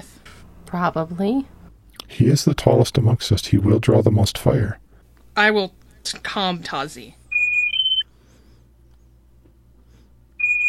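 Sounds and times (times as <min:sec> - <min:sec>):
speech: 0:00.7 - 0:01.6, 0:02.2 - 0:04.8, 0:05.4 - 0:07.2
communicator device beeping with a rising electronic tone: 0:07.3 - 0:08.0, 0:10.4 - 0:10.6.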